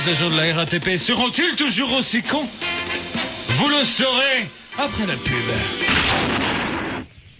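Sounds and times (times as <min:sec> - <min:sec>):
speech: 0:00.0 - 0:02.7, 0:03.6 - 0:05.9
gunfire sound effects: 0:05.9 - 0:07.0.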